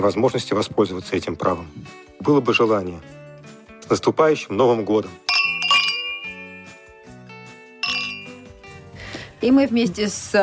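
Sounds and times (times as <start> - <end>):
speech: 0.0 - 3.2, 3.9 - 5.2, 9.4 - 10.4
glasses clinking in a toast: 5.3 - 6.8, 7.8 - 8.5.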